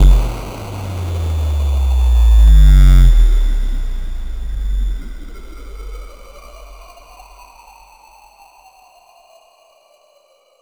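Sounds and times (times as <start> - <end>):
bass house impact with rewind effect: 0.0 - 6.9.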